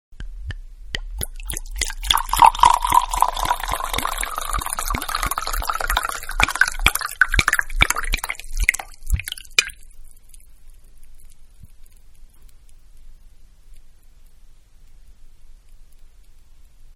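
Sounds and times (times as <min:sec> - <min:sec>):
wine pouring from glass carafe into wine glass: 0:01.2 - 0:09.8.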